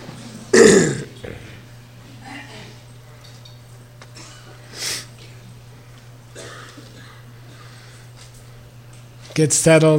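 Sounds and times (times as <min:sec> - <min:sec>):
loud gravelly throat clearing: 0:00.5 - 0:01.6, 0:04.2 - 0:04.6, 0:06.3 - 0:07.7
nose blowing: 0:00.6 - 0:01.1, 0:04.7 - 0:05.1
speech: 0:09.4 - 0:09.9.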